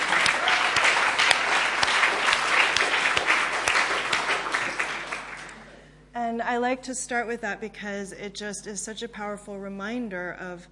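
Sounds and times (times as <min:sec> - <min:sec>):
audience applause: 0:00.0 - 0:05.6
speech: 0:06.5 - 0:10.7.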